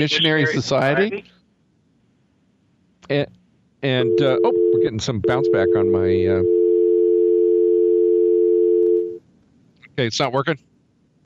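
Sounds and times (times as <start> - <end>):
speech: 0.0 - 1.4, 3.1 - 6.6, 10.0 - 10.7
telephone dial tone on the line: 4.0 - 9.2.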